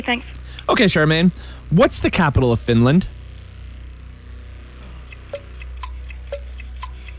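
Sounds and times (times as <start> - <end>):
speech: 0.0 - 3.2
low constant hum: 0.0 - 7.1
quiz countdown clock ticking: 4.8 - 7.1.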